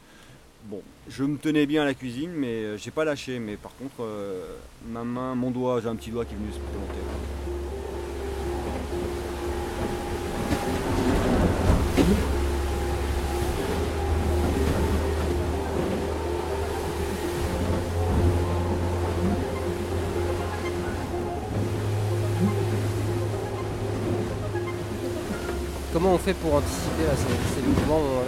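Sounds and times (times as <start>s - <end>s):
speech: 0.6s - 7.4s, 26.2s - 28.2s
low droning hum: 5.4s - 28.2s
water rushing against sailboat hulls: 5.7s - 28.2s
creaks: 6.3s - 28.2s.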